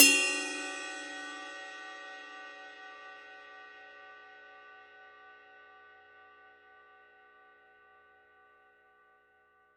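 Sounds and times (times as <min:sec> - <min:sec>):
Signature 22 reflector bell ride cymbal bell: 0:00.0 - 0:03.4.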